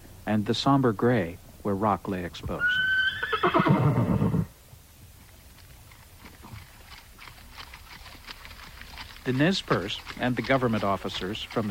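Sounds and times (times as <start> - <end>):
speech: 0.3 - 4.0, 9.3 - 11.6
horse whinny: 2.6 - 4.5
ridden horses' hooves clip-clopping at a walk in Clearwater National Forest: 4.6 - 11.6.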